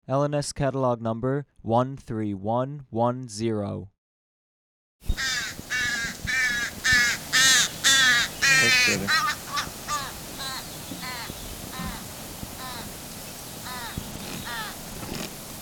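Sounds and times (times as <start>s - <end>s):
speech: 0.1s - 3.9s, 8.6s - 9.4s
young crow begging while being fed by its parent: 5.1s - 15.0s.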